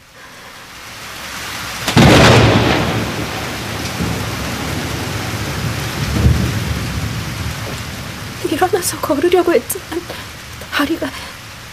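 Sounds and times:
heavy rain pouring in a storm: 0:00.0 - 0:11.7
soft thunder rumble: 0:01.7 - 0:11.7
loud thunderclap crashing: 0:01.8 - 0:08.5
speech: 0:08.8 - 0:11.2.

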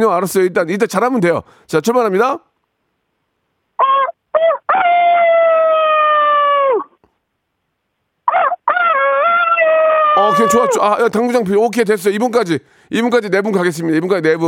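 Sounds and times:
speech: 0:00.0 - 0:02.5, 0:10.2 - 0:14.4
person imitating a rooster crowing over a phone call in a rooster-crowing contest: 0:03.8 - 0:07.0, 0:08.3 - 0:11.0.

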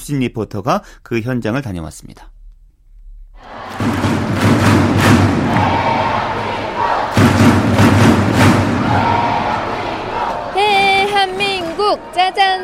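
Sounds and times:
speech: 0:00.0 - 0:02.4
large indoor crowd of fans chanting and cheering at a volleyball match: 0:03.4 - 0:12.6
heavy thumping beats of drums or thundersticks: 0:03.5 - 0:11.6.

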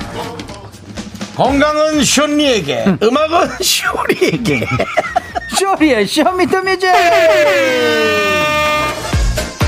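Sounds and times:
speech: 0:01.4 - 0:08.5
laughter: 0:02.7 - 0:08.7
air horn blast sliding downward in pitch: 0:06.9 - 0:09.5.

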